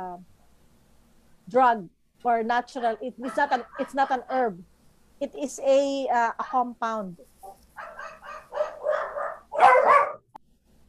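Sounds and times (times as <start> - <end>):
speech: 1.5 - 7.3
dogs barking: 2.7 - 4.2, 7.4 - 10.3.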